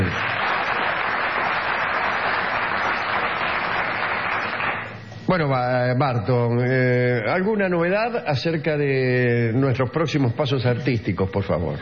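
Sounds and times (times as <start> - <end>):
audience applauding: 0.0 - 5.0
speech: 5.3 - 11.7.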